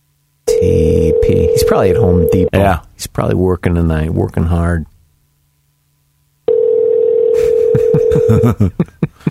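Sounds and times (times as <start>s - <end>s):
telephone ringing tone on an outgoing call over a phone line: 0.5s - 2.5s, 6.5s - 8.4s
speech: 0.6s - 4.9s, 7.7s - 9.1s.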